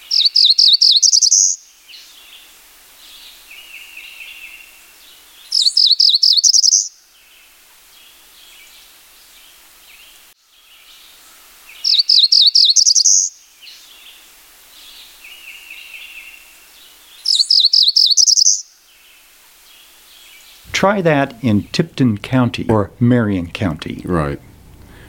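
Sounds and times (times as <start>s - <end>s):
cerulean warbler singing: 0.0s - 2.4s, 3.0s - 7.4s, 11.7s - 14.2s, 14.8s - 21.8s
faint birds: 0.0s - 25.0s
speech: 20.8s - 24.5s.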